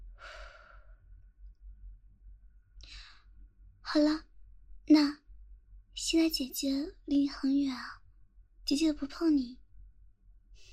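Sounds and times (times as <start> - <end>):
low hum: 0.0 - 10.7
slow calm deep breathing in and out: 0.1 - 1.0
speech: 3.9 - 4.3, 4.9 - 5.2, 6.1 - 8.0, 8.7 - 9.6.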